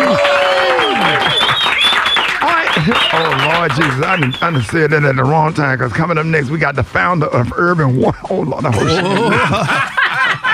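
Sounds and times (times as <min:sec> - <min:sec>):
crowd cheering and whooping: 0:00.0 - 0:04.6
crowd clapping: 0:00.0 - 0:05.3
laughter: 0:02.4 - 0:06.2, 0:07.5 - 0:10.5
speech: 0:03.6 - 0:10.0.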